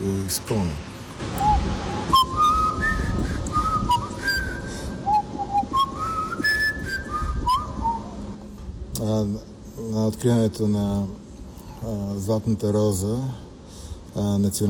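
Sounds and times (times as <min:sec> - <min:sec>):
speech: 0:00.0 - 0:01.4, 0:10.1 - 0:11.2, 0:11.8 - 0:13.5, 0:14.2 - 0:14.6
person whistling a short signal call through the lips: 0:01.4 - 0:08.2.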